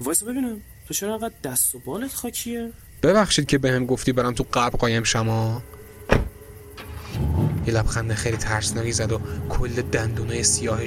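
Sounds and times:
speech: 0.0s - 6.2s, 7.7s - 10.8s
car engine rumbling as the vehicle pulls away: 5.3s - 10.8s
car door thudding shut: 6.0s - 7.6s.

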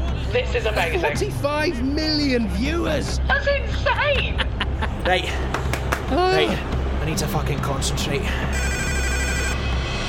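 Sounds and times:
speech: 0.3s - 4.4s, 5.1s - 8.8s
landline house phone ringing with a trilling bell: 8.5s - 9.6s.

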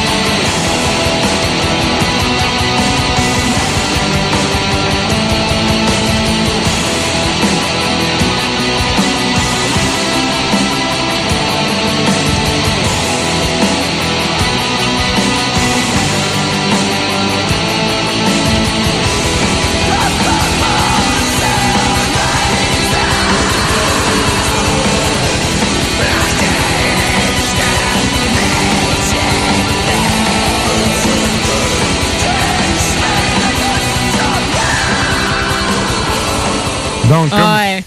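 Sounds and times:
black metal music with distorted guitars and drums: 0.0s - 37.8s
screamed vocals: 19.8s - 25.4s, 26.0s - 37.6s.

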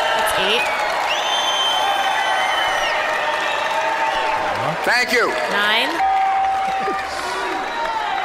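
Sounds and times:
large political convention crowd applause: 0.0s - 8.2s
large political convention crowd hubbub: 4.0s - 8.2s
speech: 4.9s - 6.1s.

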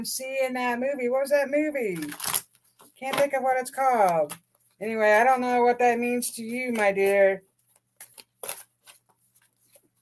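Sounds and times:
speech: 0.0s - 2.4s, 3.0s - 7.5s
deck of cards shuffling: 1.8s - 4.8s, 6.2s - 9.9s.

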